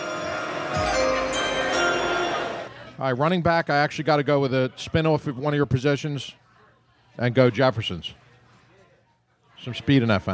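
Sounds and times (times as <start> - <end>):
bell ringing with bright metallic tone: 0.0 - 2.8
speech: 3.0 - 6.4, 7.2 - 8.2, 9.6 - 10.3.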